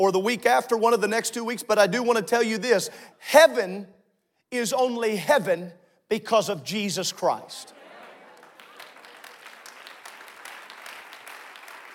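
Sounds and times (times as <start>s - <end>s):
speech: 0.0s - 7.8s
audience clapping: 7.9s - 11.9s.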